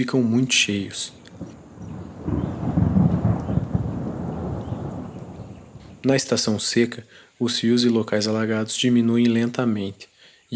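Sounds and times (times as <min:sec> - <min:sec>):
speech: 0:00.0 - 0:01.6, 0:06.0 - 0:10.5
deep rumble of thunder in the Pantanal summer rainy season: 0:00.5 - 0:06.6
heavy rain in the Pantanal summer rainy season: 0:00.5 - 0:06.7.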